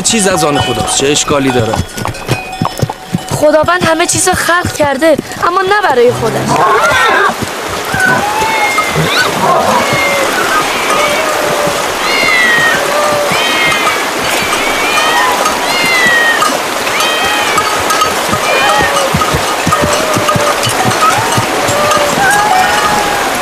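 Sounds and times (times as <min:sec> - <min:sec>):
speech: 0:00.1 - 0:02.4, 0:03.4 - 0:07.4
crowd of cats meowing: 0:06.5 - 0:23.3.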